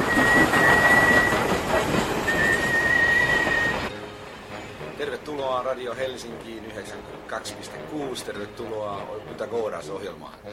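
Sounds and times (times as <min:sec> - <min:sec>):
thin steady high squeal of train wheels: 0:00.0 - 0:01.6, 0:02.2 - 0:03.9
intercity train pulling in with a continuous loud rumble: 0:00.0 - 0:10.0
speech: 0:05.6 - 0:10.5.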